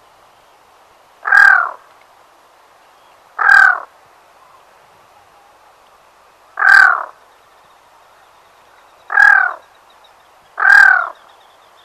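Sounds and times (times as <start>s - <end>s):
black-throated loon giving rough nasal croaks: 1.2s - 1.8s, 3.4s - 3.9s, 6.6s - 7.2s, 9.1s - 9.7s, 10.6s - 11.3s.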